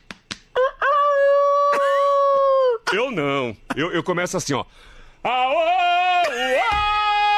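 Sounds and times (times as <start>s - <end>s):
sharp slaps: 0.0s - 0.5s
person mimicking a rooster crow: 0.6s - 2.8s
speech: 2.9s - 6.9s.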